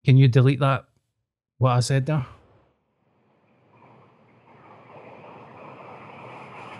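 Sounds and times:
speech: 0:00.0 - 0:00.9, 0:01.6 - 0:02.4
brown noise: 0:03.7 - 0:06.7.

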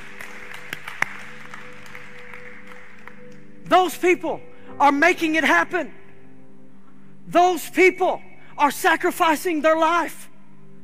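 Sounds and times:
audience clapping: 0:00.0 - 0:03.6
speech: 0:03.7 - 0:06.0, 0:07.3 - 0:10.2.

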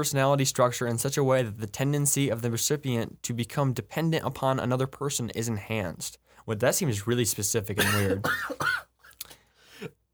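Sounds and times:
speech: 0:00.0 - 0:08.9
person coughing after a sip of soda: 0:07.8 - 0:08.9.

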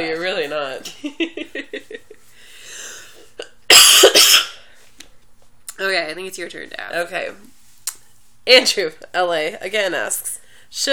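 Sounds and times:
speech: 0:00.0 - 0:01.9, 0:06.3 - 0:07.6, 0:08.5 - 0:10.9
person coughing harshly: 0:03.4 - 0:04.6.

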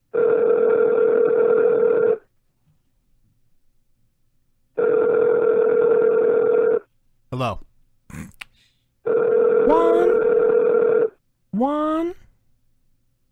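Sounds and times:
telephone ringback tones of an outgoing call through a phone line: 0:00.2 - 0:02.2, 0:04.8 - 0:06.8, 0:09.1 - 0:11.2.

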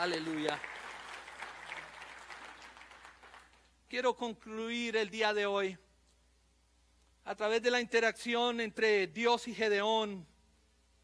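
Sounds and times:
speech: 0:00.0 - 0:00.8, 0:03.9 - 0:05.8, 0:07.2 - 0:10.3
crowd applauding in a large room: 0:00.0 - 0:03.7.

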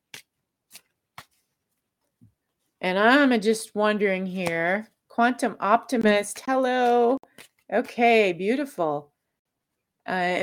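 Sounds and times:
cards pulled from a deck: 0:00.1 - 0:01.6, 0:07.2 - 0:07.7
speech: 0:02.8 - 0:09.1, 0:10.1 - 0:10.4.

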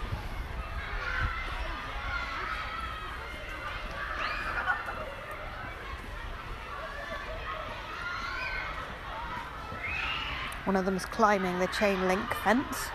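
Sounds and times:
crowd chatter: 0:00.0 - 0:12.9
small children shouting and screaming in a school playground: 0:00.0 - 0:12.9
higher children's shrieks: 0:00.5 - 0:10.6
speech: 0:10.7 - 0:12.9.

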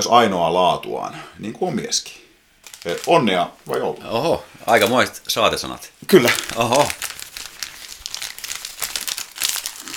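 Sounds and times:
speech: 0:00.0 - 0:02.2, 0:02.8 - 0:07.1
gift wrapping paper crinkling and tearing as a present is opened: 0:02.6 - 0:05.4, 0:06.1 - 0:09.9.

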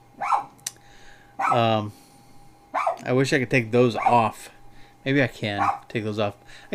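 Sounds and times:
dogs barking excitedly: 0:00.2 - 0:00.6, 0:01.4 - 0:01.7, 0:02.7 - 0:03.1, 0:04.0 - 0:04.4, 0:05.5 - 0:06.0
speech: 0:01.5 - 0:02.0, 0:03.0 - 0:06.7.

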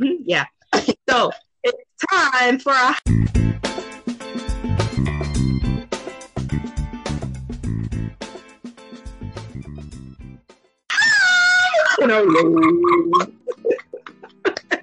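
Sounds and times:
speech: 0:00.0 - 0:03.8, 0:12.0 - 0:13.4
upbeat music: 0:03.0 - 0:10.6, 0:12.0 - 0:14.8
laughter: 0:11.5 - 0:14.8.

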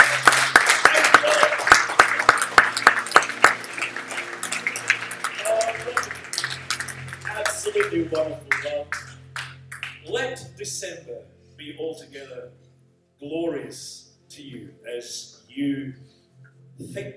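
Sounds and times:
church audience clapping at a worship celebration: 0:00.0 - 0:10.1
speech: 0:08.1 - 0:09.1, 0:10.1 - 0:12.6, 0:13.2 - 0:16.1, 0:16.8 - 0:17.1.

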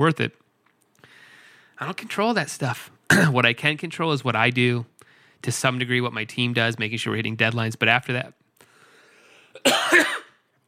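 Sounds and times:
speech: 0:00.0 - 0:00.4, 0:01.8 - 0:08.4, 0:09.5 - 0:10.2
person coughing while choking: 0:03.1 - 0:03.4, 0:09.6 - 0:10.4.

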